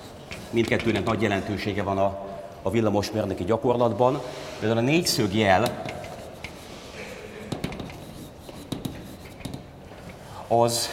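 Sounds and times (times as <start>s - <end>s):
scratchy drawing strokes on a board: 0.0s - 1.0s, 5.2s - 10.2s
speech: 0.5s - 6.0s, 10.5s - 10.9s.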